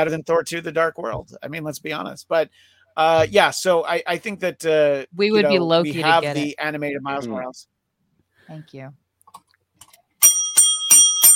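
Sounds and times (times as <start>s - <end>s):
speech: 0.0s - 7.7s, 8.5s - 9.0s
bicycle-style bell ringing: 10.2s - 11.3s.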